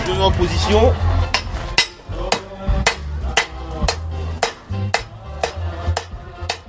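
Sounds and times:
speech: 0.2 - 1.1
hammer blows on a small piece of metal: 1.3 - 6.6.

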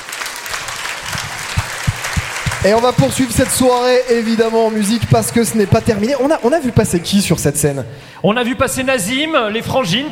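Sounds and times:
audience applause at a tenth-anniversary concert in Roanne: 0.0 - 7.5
speech: 2.6 - 10.1.

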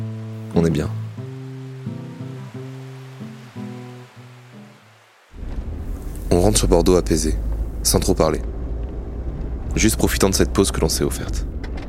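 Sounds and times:
surf washing on a beach at night: 0.0 - 6.6
speech: 0.6 - 1.0, 6.5 - 8.5, 9.8 - 11.5.

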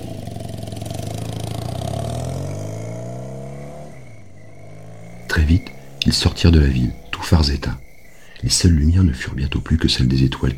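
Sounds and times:
motorcycle engine running and revving: 0.0 - 8.2
speech: 5.5 - 7.8, 8.4 - 10.5.

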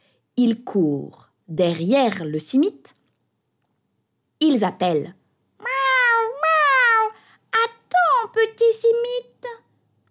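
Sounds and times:
speech: 0.4 - 3.0, 4.4 - 5.2, 8.6 - 9.3
cat meowing: 5.6 - 7.0.

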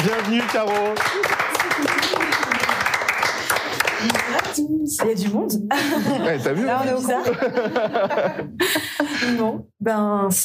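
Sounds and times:
speech: 0.0 - 2.2, 4.0 - 10.4
applause from a small group: 0.0 - 4.6
people cheering: 0.0 - 4.6
laughter: 1.1 - 4.4, 5.7 - 9.6.

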